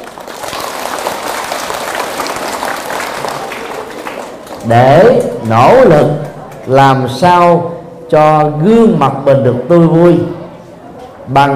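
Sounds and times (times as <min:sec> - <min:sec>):
audience applauding: 0:00.0 - 0:05.6
speech: 0:04.6 - 0:10.4, 0:11.3 - 0:11.5.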